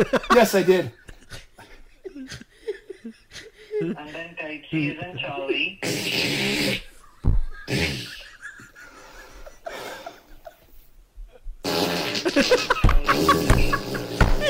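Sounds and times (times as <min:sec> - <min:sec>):
speech: 0:00.0 - 0:01.0, 0:03.8 - 0:06.9
laughter: 0:00.0 - 0:04.0, 0:07.0 - 0:10.8, 0:12.2 - 0:14.4
farting noises: 0:05.8 - 0:08.2, 0:11.6 - 0:14.4.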